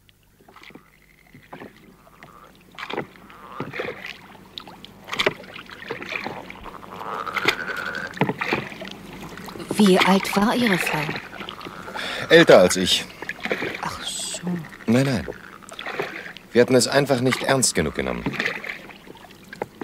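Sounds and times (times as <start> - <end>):
rowboat moving on water, splashing and sloshing: 0.0 - 19.8
speech: 9.8 - 11.3, 12.3 - 13.1, 14.9 - 15.3, 16.6 - 18.6
low breathy noise: 11.9 - 12.3.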